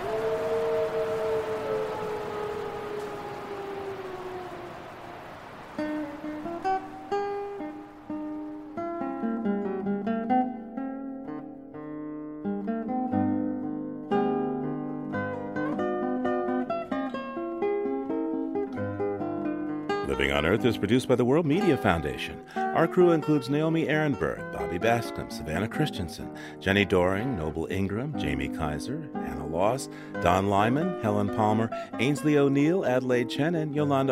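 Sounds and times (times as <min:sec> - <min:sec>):
timber wolves howling together: 0:00.0 - 0:08.9
soft instrumental music: 0:06.1 - 0:34.1
speech: 0:20.4 - 0:34.1.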